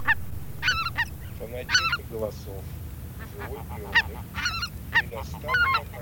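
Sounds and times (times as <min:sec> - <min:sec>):
low rumble: 0:00.0 - 0:02.8
greater white-fronted goose flock calling: 0:00.0 - 0:05.9.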